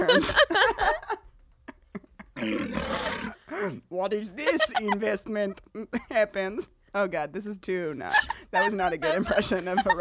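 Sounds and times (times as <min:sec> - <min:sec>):
laughter: 0:00.0 - 0:03.8, 0:04.4 - 0:05.3, 0:08.1 - 0:09.9
speech: 0:00.1 - 0:00.7, 0:04.0 - 0:09.9
lion roaring: 0:02.4 - 0:03.4.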